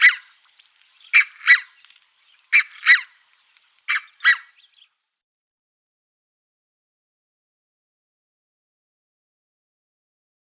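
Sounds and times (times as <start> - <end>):
red-breasted goose calling in sharp high paired yelps: 0.0 - 0.3, 1.1 - 1.8, 2.5 - 3.1, 3.9 - 4.6.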